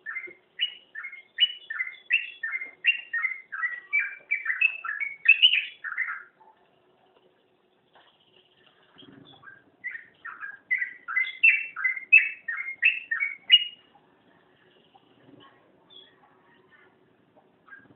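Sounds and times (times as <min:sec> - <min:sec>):
Oriental magpie-robin song: 0:00.0 - 0:06.4, 0:09.0 - 0:13.9.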